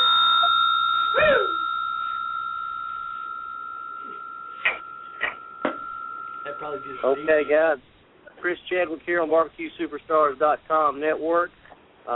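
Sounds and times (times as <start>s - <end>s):
bell ringing: 0.0s - 7.6s
speech: 6.6s - 12.1s.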